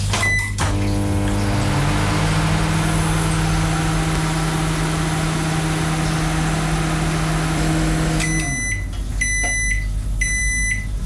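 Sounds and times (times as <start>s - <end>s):
microwave oven humming: 0.1s - 11.0s
loud high microwave oven beeps: 8.2s - 10.9s.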